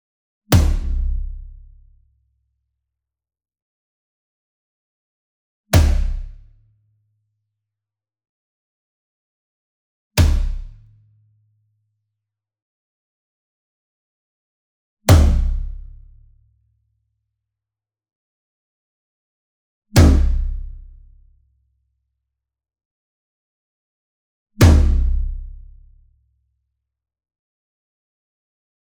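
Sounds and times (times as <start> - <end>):
single concert tom drum hit with a whip beater: 0.5 - 1.3, 5.8 - 6.3, 10.2 - 10.7, 15.1 - 15.7, 20.0 - 20.6, 24.6 - 25.3.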